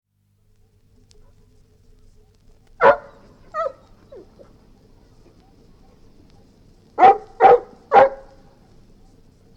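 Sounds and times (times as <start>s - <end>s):
golden retriever barking: 2.8s - 4.6s, 5.2s - 9.5s.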